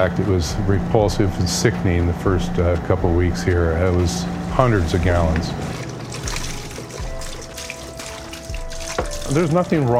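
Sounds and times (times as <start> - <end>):
speech: 0.0 - 5.8, 9.3 - 9.9
milk pouring and splashing into a drain: 4.0 - 9.9.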